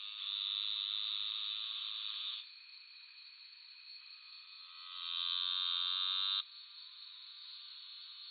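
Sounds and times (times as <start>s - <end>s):
Hypopachus ustus calling: 0.2s - 2.4s, 4.6s - 6.4s.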